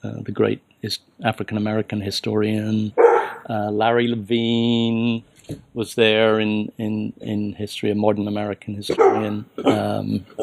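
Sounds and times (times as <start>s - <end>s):
speech: 0.0s - 10.4s
dog barking: 3.0s - 3.4s, 8.9s - 9.4s.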